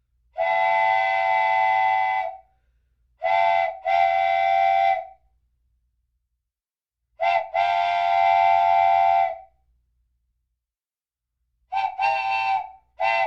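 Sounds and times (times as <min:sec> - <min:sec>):
wooden train whistle: 0:00.4 - 0:02.5, 0:03.2 - 0:05.2, 0:07.2 - 0:09.6, 0:11.7 - 0:13.2.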